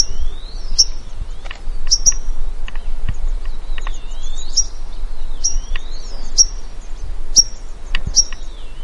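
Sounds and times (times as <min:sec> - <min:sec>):
Vinaceous rosefinch calling with high piercing single notes: 0:00.0 - 0:02.4, 0:03.2 - 0:08.8.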